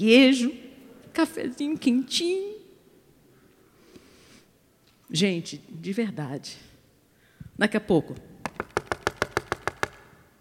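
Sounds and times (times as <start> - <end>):
speech: 0.0 - 0.6, 1.2 - 2.6, 5.1 - 6.7, 7.6 - 8.3
knocking on a door: 8.4 - 10.0.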